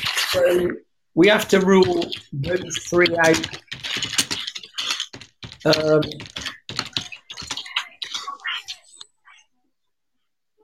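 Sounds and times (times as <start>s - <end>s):
speech: 0.3s - 3.9s, 5.6s - 6.4s
heavy rapid typing on a computer keyboard: 1.8s - 8.8s.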